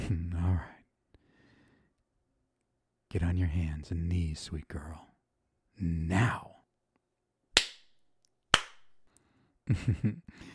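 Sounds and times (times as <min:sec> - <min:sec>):
speech: 0:03.1 - 0:05.1, 0:05.8 - 0:06.5, 0:09.7 - 0:10.5
hand slaps on bare buttocks: 0:07.6 - 0:09.0.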